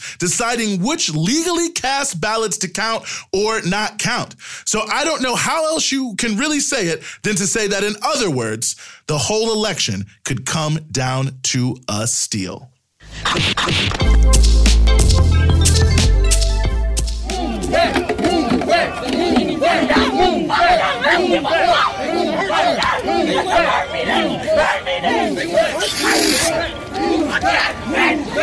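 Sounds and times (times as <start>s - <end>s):
speech: 0.2s - 16.0s, 18.9s - 28.4s
crowd of street protesters shouting and yelling in Washington DC at night: 16.8s - 28.4s.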